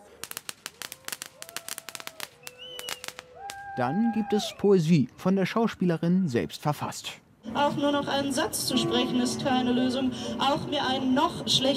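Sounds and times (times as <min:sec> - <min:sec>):
firecracker bangs: 0:00.0 - 0:03.7
faint whistling tones: 0:02.4 - 0:03.2
speech: 0:03.8 - 0:11.7.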